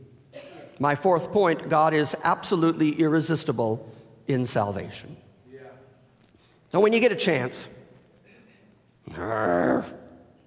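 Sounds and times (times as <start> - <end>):
speech: 0.8 - 5.2, 6.7 - 7.8, 9.1 - 10.0
person growling: 9.1 - 10.0.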